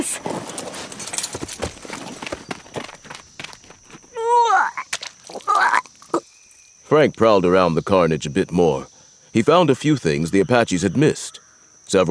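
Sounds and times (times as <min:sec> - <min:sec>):
horses walking with hooves clip-clopping: 0:00.0 - 0:04.2
speech: 0:06.9 - 0:12.0.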